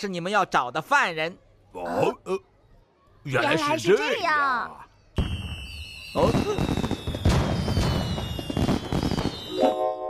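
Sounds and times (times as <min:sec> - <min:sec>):
speech: 0:00.0 - 0:02.5, 0:03.2 - 0:04.9, 0:06.1 - 0:06.7
fireworks bursting with crackling booms: 0:05.2 - 0:09.6
whistling trails of fireworks: 0:05.2 - 0:09.8.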